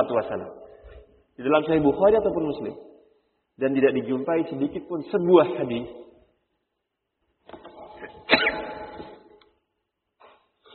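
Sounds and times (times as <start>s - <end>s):
speech: 0.0s - 0.6s, 1.4s - 2.9s, 3.6s - 6.1s
person sneezing: 7.9s - 9.3s.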